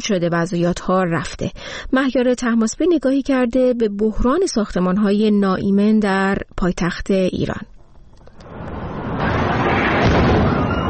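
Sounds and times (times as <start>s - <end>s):
speech: 0.0s - 7.7s
oxygen and helium gas cylinders exploding: 8.5s - 10.8s.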